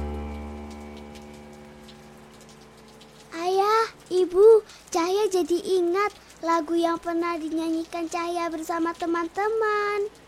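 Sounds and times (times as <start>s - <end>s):
sustained droning tonal hum: 0.0s - 3.0s
rain falling on roof tiles: 0.0s - 10.2s
speech: 4.2s - 10.2s.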